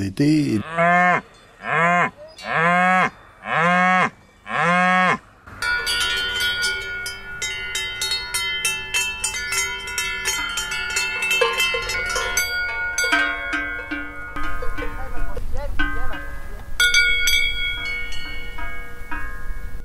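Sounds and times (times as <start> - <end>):
speech: 0.0 - 1.3
bells clanging on grazing cattle: 0.3 - 4.8, 5.5 - 19.8.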